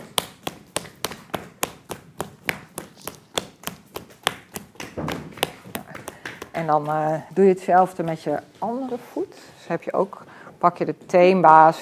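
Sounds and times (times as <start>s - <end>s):
firm tapping on the sole of a foot: 0.0s - 8.4s
speech: 6.6s - 11.7s.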